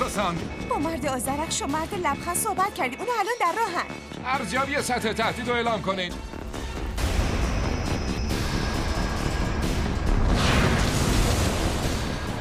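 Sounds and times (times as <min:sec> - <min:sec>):
speech: 0:00.2 - 0:06.4
powerful explosions rumbling and roaring: 0:06.8 - 0:12.4.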